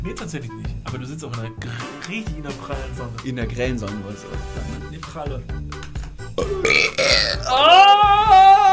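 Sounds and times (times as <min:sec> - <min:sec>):
speech: 0:00.0 - 0:05.8, 0:06.4 - 0:08.5
long loud drawn-out burp: 0:06.4 - 0:07.6.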